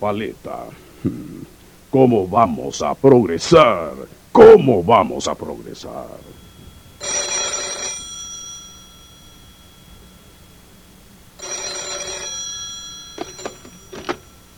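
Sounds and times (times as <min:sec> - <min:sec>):
speech: 0:00.0 - 0:06.4
telephone bell ringing with an incoming call: 0:05.8 - 0:14.5.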